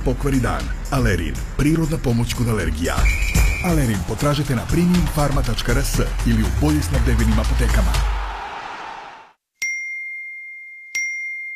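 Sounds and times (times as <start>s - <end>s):
speech: 0.0s - 8.2s
bright electronic phone message notification dings: 9.6s - 11.5s.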